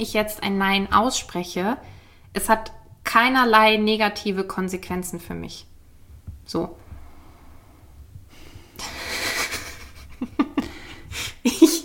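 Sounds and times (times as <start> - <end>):
speech: 0.0 - 5.7, 6.5 - 6.8
heavy labored breathing with gasping breaths: 6.8 - 9.6, 10.6 - 11.5.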